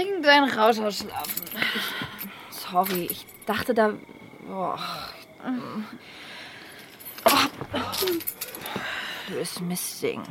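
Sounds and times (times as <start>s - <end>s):
speech: 0.0s - 2.0s, 2.7s - 6.3s, 7.7s - 10.2s
keys jangling as they are handed over: 1.0s - 3.6s, 6.8s - 8.8s.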